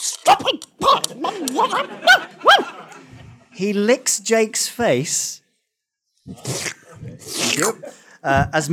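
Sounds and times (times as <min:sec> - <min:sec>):
dog giving excited high-pitched barks and yips: 0:00.2 - 0:02.8
laughter: 0:00.8 - 0:03.6
speech: 0:01.6 - 0:02.4, 0:03.6 - 0:05.4, 0:06.3 - 0:08.7.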